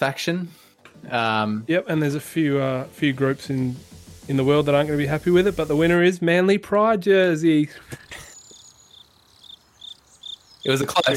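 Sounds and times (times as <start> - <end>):
speech: 0.0 - 8.3, 10.6 - 11.1
crickets chirping: 7.9 - 11.1.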